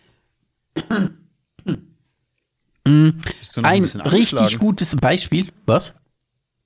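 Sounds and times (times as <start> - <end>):
person coughing: 0.8 - 1.9
speech: 3.2 - 6.0.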